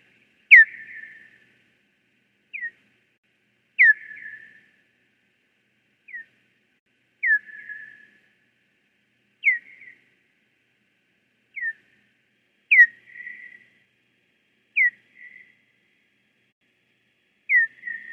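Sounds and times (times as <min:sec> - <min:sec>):
Hawaiian hoary bat calls: 0:00.5 - 0:01.4, 0:03.8 - 0:04.6, 0:07.2 - 0:08.0, 0:12.7 - 0:13.7, 0:14.8 - 0:15.5, 0:17.5 - 0:18.1.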